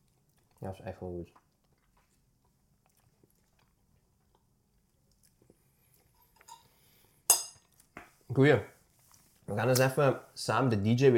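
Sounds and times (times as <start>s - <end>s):
speech: 0.6s - 1.5s, 8.4s - 8.7s, 9.5s - 11.1s
knife and fork cutting food on a plate: 6.3s - 6.7s, 7.3s - 7.7s.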